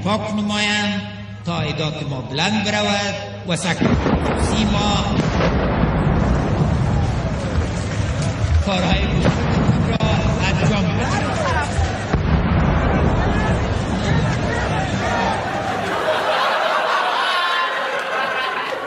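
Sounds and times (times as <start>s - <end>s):
man giving a presidential inaugural speech over a loudspeaker: 0.0s - 5.2s, 8.6s - 11.8s
crowd commotion: 2.4s - 18.8s
sustained rumbling and crackling noise: 3.6s - 15.8s
loud explosions nearby shaking the building: 3.6s - 16.1s
laughter: 14.1s - 18.8s.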